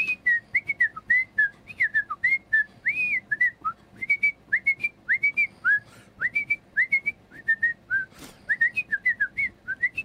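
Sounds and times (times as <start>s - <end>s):
person whistling a bouncy melody: 0.0s - 10.0s.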